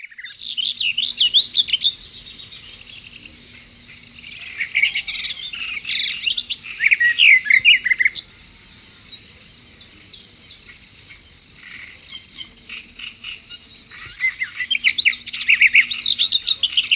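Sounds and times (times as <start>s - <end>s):
birds chirping and twittering at water: 0.0s - 16.9s
faint low hum: 0.0s - 16.9s.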